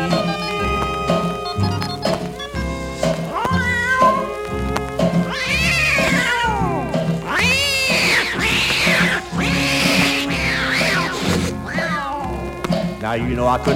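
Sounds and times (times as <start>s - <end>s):
backing music with thumping beat: 0.0s - 13.7s
old tomcat yowling and screeching in a fight: 3.3s - 4.6s, 5.2s - 12.4s
speech: 13.2s - 13.7s.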